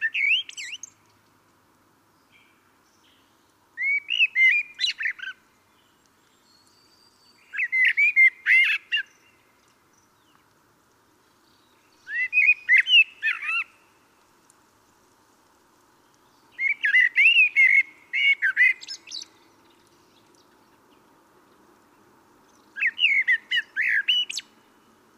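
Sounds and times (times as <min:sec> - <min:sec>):
common blackbird Turdus merula singing mellow whistles and twittering: 0:00.0 - 0:01.0, 0:02.2 - 0:10.4, 0:11.4 - 0:13.9, 0:16.2 - 0:20.5, 0:22.5 - 0:24.6.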